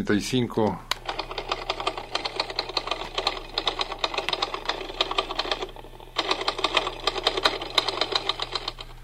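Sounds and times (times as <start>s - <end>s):
person speaking: 0.0s - 1.0s
rapid typing on an old 1935 model typewriter: 1.0s - 9.0s.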